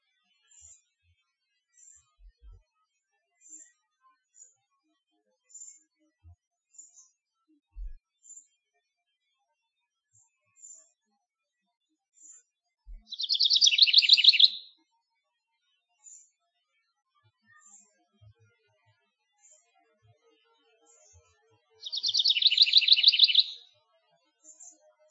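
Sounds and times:
house wren singing: 13.0 - 14.7, 21.8 - 23.6.

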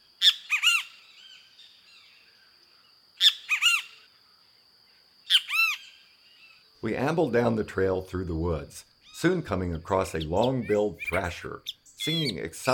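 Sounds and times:
kiskadee harsh three-note calls: 0.2 - 2.1, 3.2 - 4.1, 5.2 - 6.6, 10.1 - 12.7
speech: 6.8 - 12.7.

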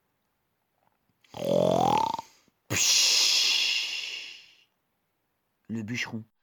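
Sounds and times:
voice imitating the snore of a wolf falling asleep: 1.3 - 4.4
speech: 5.7 - 6.4.

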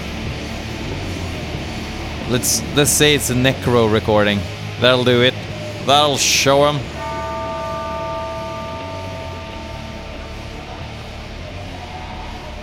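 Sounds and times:
speech: 2.3 - 6.9
single bell tone ringing: 6.8 - 11.5.

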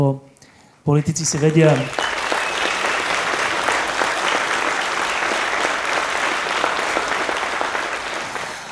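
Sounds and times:
speech: 0.0 - 2.2
audience applause: 1.1 - 8.6.

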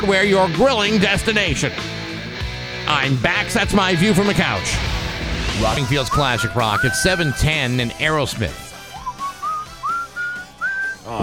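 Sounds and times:
speech: 0.0 - 2.0, 2.9 - 5.0, 5.6 - 8.6
person whistling a short melodic tune: 6.0 - 7.4, 8.8 - 11.1.

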